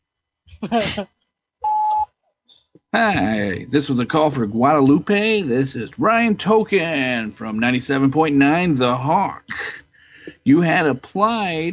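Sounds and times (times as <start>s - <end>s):
recorded voice speaking: 0.6s - 1.0s, 3.0s - 11.7s
speech: 0.6s - 1.2s, 2.9s - 9.8s, 10.4s - 11.7s
voicemail beep signalling start of message recording: 1.6s - 2.1s.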